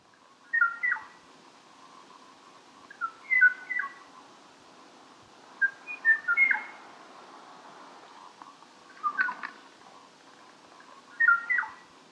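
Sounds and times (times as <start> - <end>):
steady faint noise: 0.0 - 12.1
lone o'o bird singing whistled duet phrases: 0.5 - 1.1, 2.9 - 4.0, 5.6 - 6.7, 9.0 - 9.4, 11.1 - 11.8.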